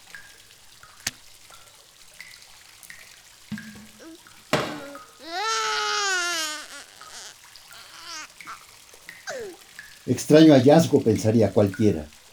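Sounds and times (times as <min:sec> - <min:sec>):
sharp knocks: 0:03.5 - 0:05.1
baby babbling in toilet water: 0:03.6 - 0:11.1
baby stuck in a toilet wailing: 0:04.0 - 0:09.7
speech: 0:10.1 - 0:12.2.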